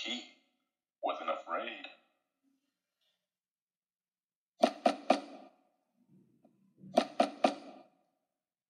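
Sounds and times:
firm knocks on a door: 4.6 - 5.4, 6.8 - 7.9.

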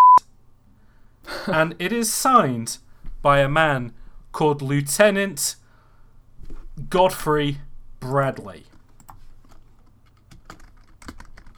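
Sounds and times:
low steady hum: 0.0 - 11.5
speech: 1.5 - 5.6, 6.8 - 8.7
typing on a computer keyboard: 8.7 - 11.5.

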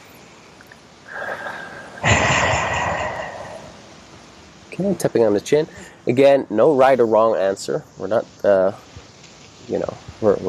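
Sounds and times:
person taking a deep breath during a relaxation tapping exercise: 1.1 - 3.9
speech: 4.8 - 8.9, 9.7 - 10.4.

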